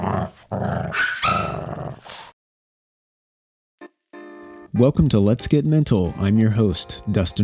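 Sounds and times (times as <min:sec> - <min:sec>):
dog growling aggressively: 0:00.0 - 0:02.4
speech: 0:00.5 - 0:01.1, 0:04.8 - 0:07.4
dog yip: 0:00.9 - 0:01.6.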